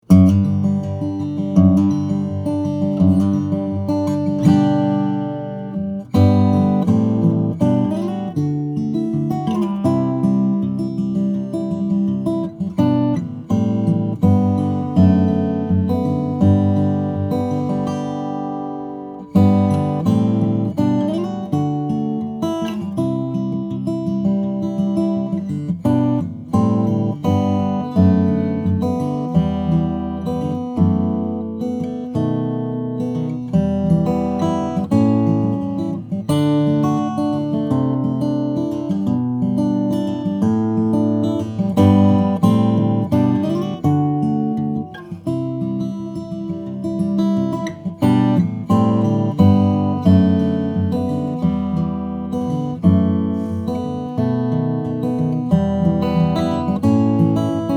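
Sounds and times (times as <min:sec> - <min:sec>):
flattop steel string guitar of Brazilian rosewood and Italian spruce: 0:00.0 - 0:57.7.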